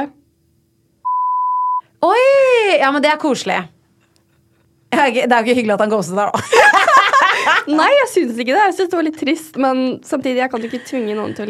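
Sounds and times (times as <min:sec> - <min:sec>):
speech: 0:00.0 - 0:00.2, 0:02.0 - 0:03.8, 0:04.9 - 0:11.4
electronic censor bleep covering a spoken name: 0:01.0 - 0:01.9
laughter: 0:06.4 - 0:07.8.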